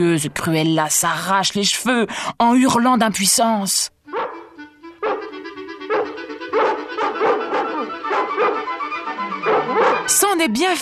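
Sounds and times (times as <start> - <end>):
speech: 0.0 - 4.0, 10.1 - 10.7
several dogs barking and yipping excitedly: 4.1 - 10.3.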